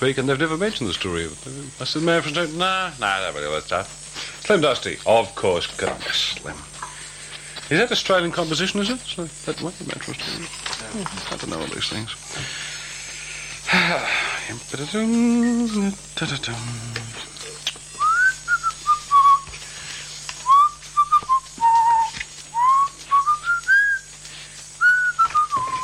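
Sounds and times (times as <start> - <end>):
speech: 0.0 - 6.7, 7.7 - 12.7, 13.7 - 17.3
person whistling a tune: 18.0 - 19.5, 20.4 - 24.1, 24.8 - 25.8.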